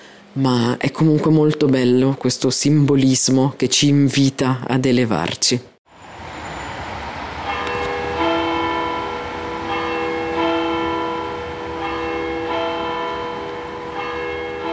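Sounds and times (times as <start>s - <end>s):
speech: 0.4s - 5.7s
church bells ringing from neighbouring Reformed church: 6.4s - 14.7s.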